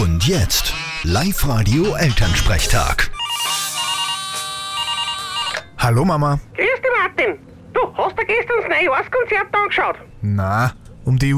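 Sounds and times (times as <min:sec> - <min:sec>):
speech: 0:00.2 - 0:03.2, 0:05.8 - 0:06.6, 0:07.2 - 0:11.3
telephone ringing with a bright electronic ringtone: 0:03.1 - 0:05.8.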